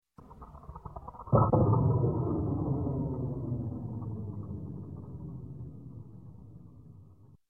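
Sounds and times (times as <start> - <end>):
slow single space explosion blast: 1.4 - 7.1.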